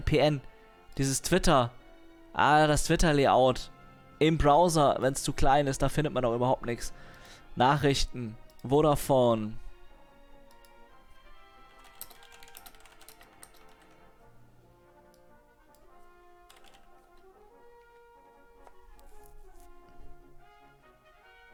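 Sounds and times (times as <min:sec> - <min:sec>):
steady tonal background: 0:00.0 - 0:21.0
speech: 0:00.1 - 0:01.8, 0:02.4 - 0:09.6
faint typing on a computer keyboard: 0:11.7 - 0:14.1, 0:16.4 - 0:17.3.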